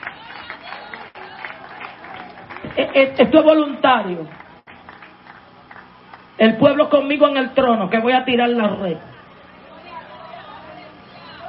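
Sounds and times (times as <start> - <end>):
church congregation applauding: 0.0 - 6.4
crowd noise in church: 0.0 - 11.4
speech: 2.8 - 4.4, 6.4 - 9.1.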